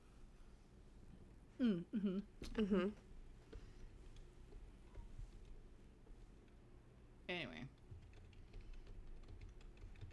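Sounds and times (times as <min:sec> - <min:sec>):
speech: 0:01.6 - 0:03.1
rapid clicking of keys on a computer keyboard: 0:07.8 - 0:10.1.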